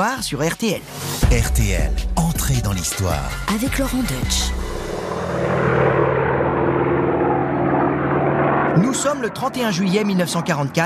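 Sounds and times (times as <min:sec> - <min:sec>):
speech: 0:00.0 - 0:05.7, 0:08.8 - 0:10.8
American Lightning P-38 propeller airplane flying overhead off Marseille: 0:04.0 - 0:10.8.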